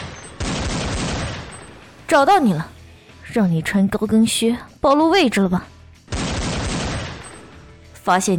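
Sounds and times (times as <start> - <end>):
close-range gunfire in a dense fusillade: 0.0 - 2.0, 6.1 - 7.7
speech: 2.1 - 2.7, 3.3 - 5.7, 8.0 - 8.3.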